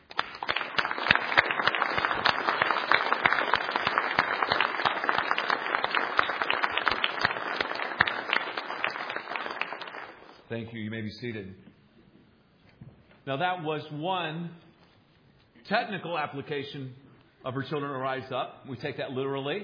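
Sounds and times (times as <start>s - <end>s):
audience applauding: 0.0s - 10.4s
speech: 10.5s - 11.7s, 13.3s - 14.6s, 15.7s - 19.6s.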